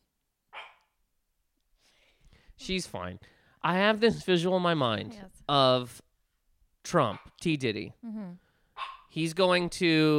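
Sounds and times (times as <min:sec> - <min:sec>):
faint dog yelp: 0:00.6 - 0:00.9
female dog barking at people coming up stairs: 0:00.6 - 0:00.9, 0:08.8 - 0:09.1
speech: 0:02.6 - 0:06.0, 0:06.8 - 0:10.1.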